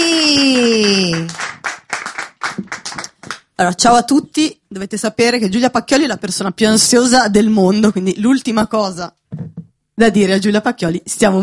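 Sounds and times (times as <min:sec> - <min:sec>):
loud falling cheer or whoop: 0:00.0 - 0:01.3
audience applause: 0:00.0 - 0:03.4
speech: 0:03.6 - 0:11.4.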